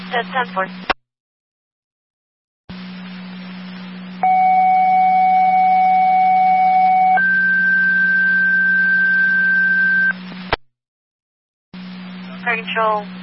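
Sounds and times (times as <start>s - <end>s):
constant hum and hiss: 0.0s - 1.0s, 2.7s - 10.6s, 11.8s - 13.2s
speech: 0.1s - 1.0s, 12.6s - 13.2s
two-tone dispatch pager alert over a radio channel: 4.2s - 10.1s.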